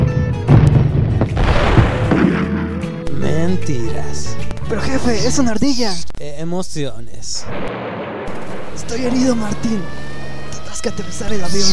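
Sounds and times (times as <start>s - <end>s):
heavy explosion booms: 0.5s - 2.8s, 7.4s - 9.1s
speech: 3.5s - 7.9s, 8.8s - 10.0s, 10.8s - 11.7s.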